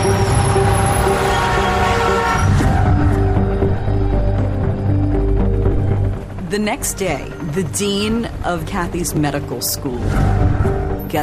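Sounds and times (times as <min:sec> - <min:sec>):
train horn tones: 0:00.0 - 0:03.7
train rumbling at a station: 0:00.0 - 0:11.2
speech: 0:06.5 - 0:11.2.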